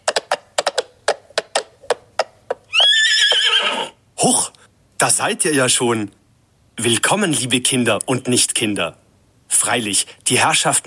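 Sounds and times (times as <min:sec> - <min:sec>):
sharp clip-clop taps on a hard surface: 0:00.0 - 0:02.7
horse whinnying with a wavering high-pitched cry: 0:02.7 - 0:04.0
speech: 0:04.2 - 0:06.2, 0:06.8 - 0:09.0, 0:09.6 - 0:10.8.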